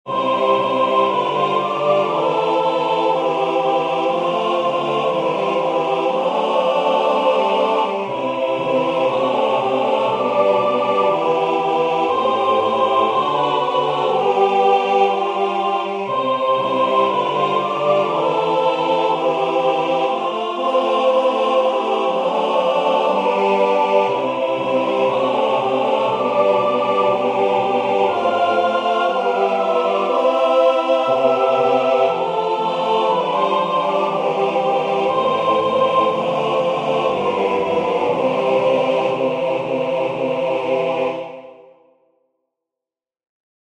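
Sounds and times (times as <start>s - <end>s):
full ensemble music: 0.1s - 41.4s.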